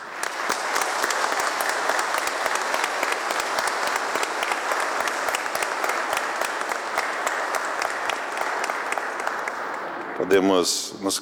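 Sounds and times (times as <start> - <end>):
congregation applauding: 0.0 - 10.5
speech: 10.3 - 11.1.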